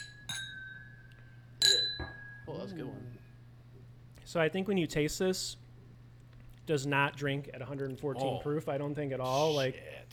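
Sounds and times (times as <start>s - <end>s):
drinking glasses clinking in a toast: 0.0s - 2.5s
low hum: 0.0s - 10.1s
speech: 2.7s - 3.2s, 4.3s - 5.6s, 6.7s - 10.1s.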